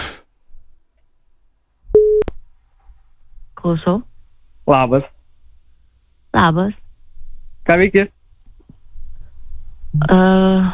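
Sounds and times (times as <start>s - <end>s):
faint noise: 0.0s - 10.7s
telephone beeping while a call is placed: 2.0s - 2.2s
speech: 3.6s - 4.1s, 4.7s - 5.2s, 6.3s - 6.8s, 7.7s - 8.2s, 10.0s - 10.7s.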